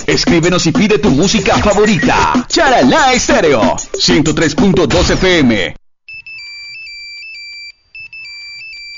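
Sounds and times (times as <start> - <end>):
speech: 0.2 - 5.8
cell phone ringtone with bright electronic melody of alternating high tones: 6.1 - 8.9.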